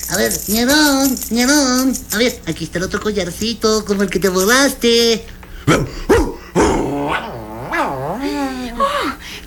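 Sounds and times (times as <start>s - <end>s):
speech: 0.1s - 6.1s
dog growling: 5.5s - 9.2s
dog barking: 5.7s - 6.4s.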